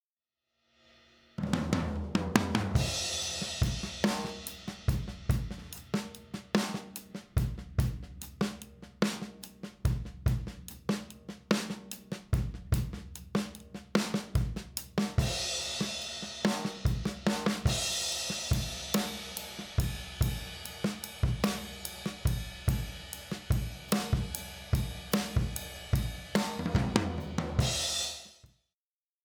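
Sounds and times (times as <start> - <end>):
drums with EQ lifted: 0.8 - 28.5.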